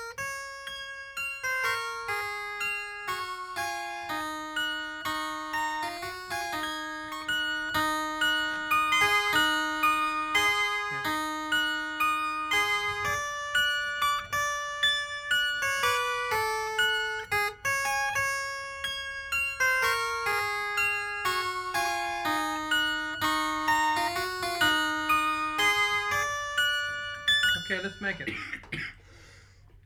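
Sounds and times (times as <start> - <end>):
wind chimes tinkling: 0.3 - 28.4
speech: 27.9 - 28.6.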